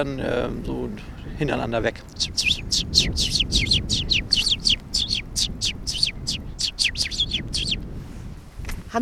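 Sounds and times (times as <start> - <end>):
speech: 0.0 - 4.8
low rumble: 0.0 - 9.0
sparrow nest song of rapid high chirping: 0.2 - 8.0.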